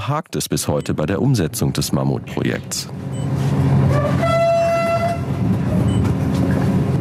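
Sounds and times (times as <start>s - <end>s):
speech: 0.0s - 3.8s
three-carriage express train rumbling along rails in sleet in Lithuania: 2.2s - 6.9s
whistle-like tonal blast of an express train: 3.9s - 5.3s.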